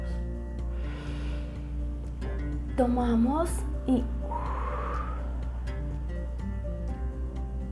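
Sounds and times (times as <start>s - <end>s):
deep breath drawn in through the nose and exhaled: 0.0s - 2.0s, 4.2s - 5.9s
steady sustained musical drone: 0.0s - 7.6s
speech: 2.8s - 4.2s.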